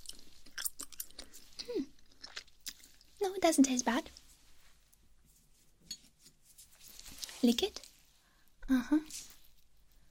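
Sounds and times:
wet crunchy chewing: 0.0 - 3.2
speech: 3.2 - 4.2, 7.4 - 7.9, 8.7 - 9.3.

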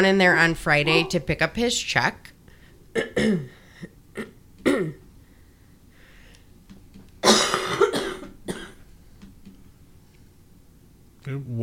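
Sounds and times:
speech: 0.0 - 2.3, 2.9 - 5.0, 11.2 - 11.6
person coughing harshly: 2.9 - 5.0, 7.2 - 8.8.

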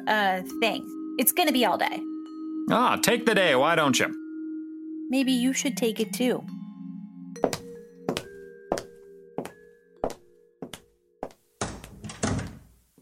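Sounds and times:
speech: 0.0 - 4.2, 5.1 - 6.6
door clicking shut: 11.6 - 12.8.

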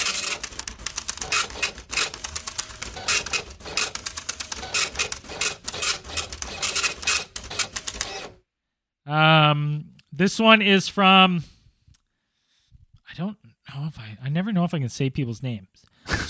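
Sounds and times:
printer printing a page: 0.0 - 8.4
speech: 9.1 - 11.5, 14.4 - 16.2.

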